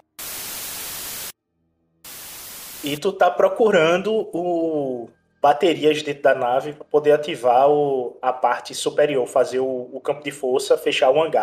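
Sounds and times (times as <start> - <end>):
harsh radio static from a communicator: 0.0 - 1.3, 2.1 - 3.0
speech: 2.8 - 11.4.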